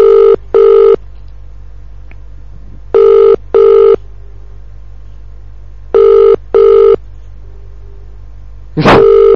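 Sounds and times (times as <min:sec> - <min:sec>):
telephone ringback tone double-ring bursts through a line: 0:00.0 - 0:01.0, 0:02.9 - 0:04.0, 0:05.9 - 0:07.0, 0:09.0 - 0:09.3
steady line hum: 0:00.0 - 0:09.3.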